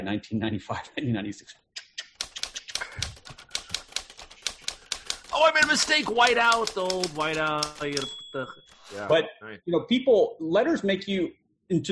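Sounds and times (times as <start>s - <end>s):
speech: 0.0s - 1.6s, 5.4s - 11.9s
typewriter keys clacking: 2.2s - 9.0s.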